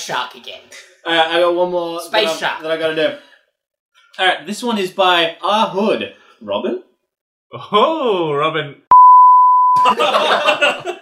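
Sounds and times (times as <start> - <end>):
speech: 0.0 - 3.3, 4.2 - 6.9, 7.5 - 8.8, 9.8 - 11.0
high-pitched censor bleep: 8.9 - 9.9
laughter: 9.8 - 11.0.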